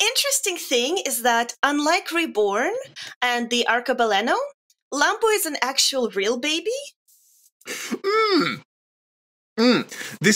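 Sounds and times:
speech: 0.1s - 7.0s, 7.6s - 8.7s, 9.6s - 10.3s
person clearing throat with raspy ahem: 7.8s - 8.7s, 9.6s - 10.0s.

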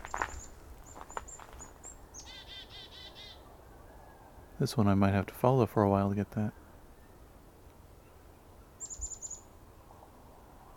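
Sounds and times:
chickadee calling outdoors with whistled and buzzy dee notes: 0.1s - 3.4s
speech: 4.6s - 6.6s.

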